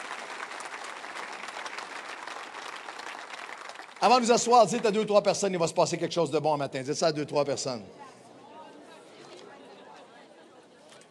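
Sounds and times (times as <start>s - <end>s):
church congregation applauding during a worship service: 0.0s - 5.4s
speech: 4.0s - 8.1s.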